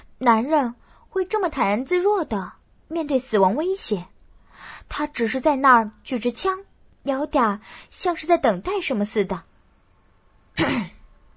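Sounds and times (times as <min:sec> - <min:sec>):
speech: 0:00.2 - 0:04.1, 0:04.9 - 0:09.5, 0:10.6 - 0:11.0
throat-clearing cough at a doorway: 0:10.6 - 0:11.0.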